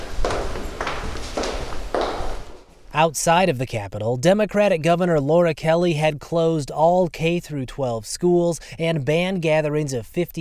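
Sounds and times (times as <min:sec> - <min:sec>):
single person's footsteps in a quiet interior: 0:00.0 - 0:03.0
speech: 0:03.0 - 0:10.3.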